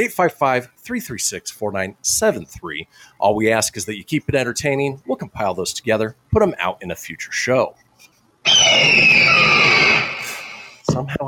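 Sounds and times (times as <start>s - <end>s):
speech: 0.0s - 7.8s, 8.4s - 9.6s, 10.9s - 11.2s
phoenix screech: 8.5s - 10.8s.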